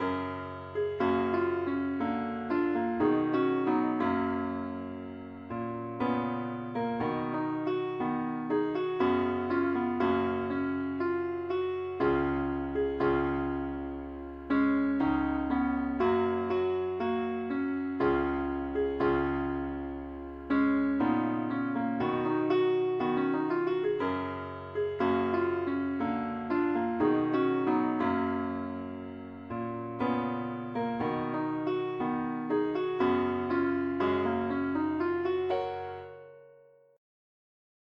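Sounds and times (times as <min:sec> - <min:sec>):
keyboard: 0:00.0 - 0:36.8.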